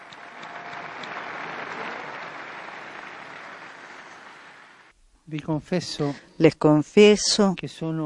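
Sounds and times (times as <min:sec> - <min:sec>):
sustained applause from a large crowd: 0:00.0 - 0:04.9
speech: 0:05.3 - 0:08.0.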